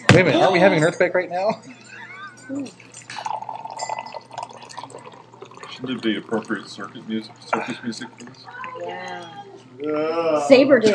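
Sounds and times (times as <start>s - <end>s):
speech: 0.2s - 2.9s, 5.8s - 10.9s
tea pouring into a cup: 2.7s - 8.0s.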